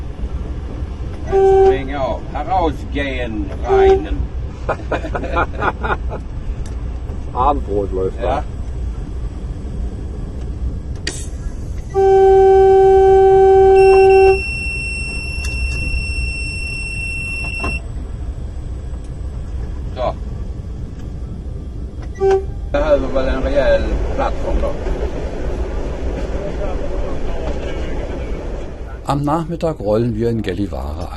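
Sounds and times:
low rumbling diesel locomotive engine: 0:00.0 - 0:31.1
railway clanks: 0:00.0 - 0:31.1
diesel locomotive signal horn blasting: 0:01.2 - 0:02.2, 0:03.6 - 0:04.3, 0:11.8 - 0:17.8, 0:22.2 - 0:22.8
speech: 0:01.3 - 0:06.3, 0:07.3 - 0:08.6, 0:11.9 - 0:12.3, 0:29.1 - 0:31.1
laughter: 0:04.5 - 0:06.4, 0:23.8 - 0:24.8.

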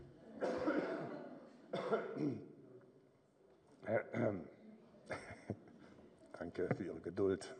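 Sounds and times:
person coughing hard: 0:00.4 - 0:01.2, 0:01.8 - 0:02.5
speech: 0:01.8 - 0:02.5, 0:03.9 - 0:05.2, 0:06.4 - 0:07.5.

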